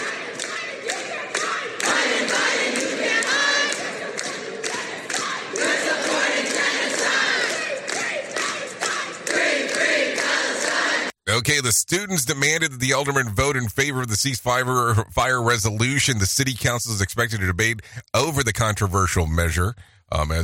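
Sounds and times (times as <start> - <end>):
scattered claps: 0.0 - 11.1
students shouting at a protest: 0.0 - 11.1
large crowd of high school students chanting in unison at a protest: 0.0 - 11.2
speech: 11.5 - 20.4.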